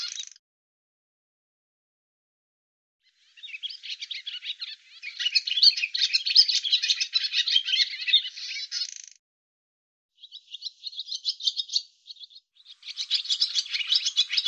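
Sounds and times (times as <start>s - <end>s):
barn swallow rapid scratchy twitter: 0.0s - 0.4s, 3.3s - 9.2s, 10.2s - 14.4s.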